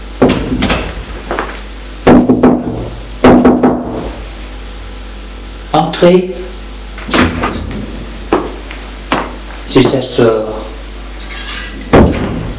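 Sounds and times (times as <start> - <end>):
quiet room hiss: 0.0 - 12.5
knocking on a bedroom door: 2.1 - 4.0, 11.9 - 12.4
speech: 5.7 - 7.6, 9.7 - 10.6
woman shutting a bedroom door with a solid thud: 7.0 - 8.1, 11.9 - 12.5.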